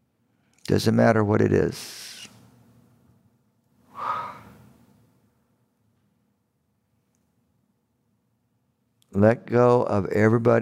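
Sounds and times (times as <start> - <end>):
speech: 0.7 - 2.1, 9.2 - 10.6
deep breath during a guided meditation: 3.9 - 4.8.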